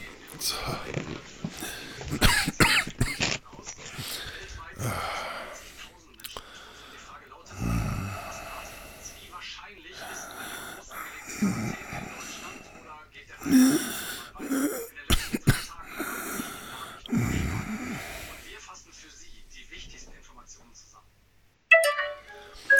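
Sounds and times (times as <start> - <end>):
gasping and heavy breathing: 0.4 - 2.3, 3.1 - 9.3, 10.0 - 14.9, 15.8 - 18.6
speech: 0.4 - 2.4
harsh coughing: 1.6 - 3.4, 13.4 - 16.4
telephone ringing with an electronic chime: 21.7 - 22.7.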